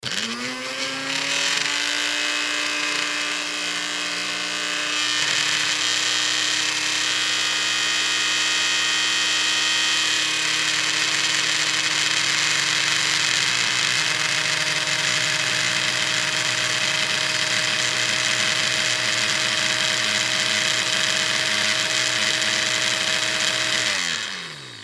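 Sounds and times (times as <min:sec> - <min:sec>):
juicer blender appliance running empty: 0:00.0 - 0:24.8.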